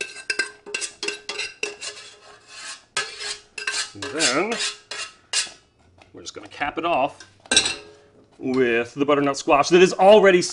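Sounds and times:
utensil scraping cooked lentils out of a pot: 0.0 - 7.5
speech: 4.0 - 4.8, 6.2 - 7.7, 8.4 - 10.5.

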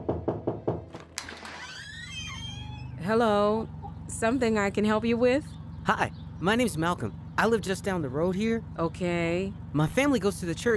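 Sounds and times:
knocking on a door: 0.0 - 1.4
latch rattling: 0.8 - 2.9
speech: 3.1 - 10.7.

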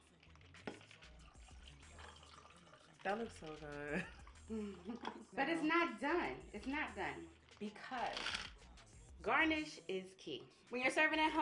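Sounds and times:
ice clinking: 0.0 - 5.3
cocktail pouring from a shaker into glasses: 0.0 - 8.6
speech: 3.0 - 8.5, 9.2 - 11.4.

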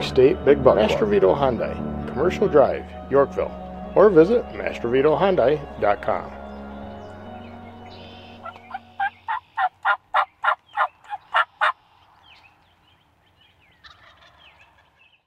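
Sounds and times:
speech: 0.1 - 6.4
wild turkey gobbling: 7.8 - 12.0, 13.8 - 15.2.

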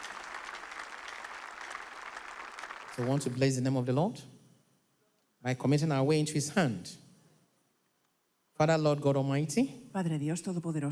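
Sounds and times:
congregation clapping hands at a church service: 0.0 - 3.8
speech: 3.0 - 4.4, 5.4 - 7.0, 8.6 - 10.8.

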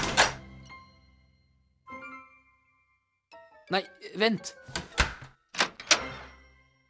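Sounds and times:
speech: 3.7 - 4.8
door clunks: 4.7 - 6.3
door latch clicks: 5.0 - 6.2.

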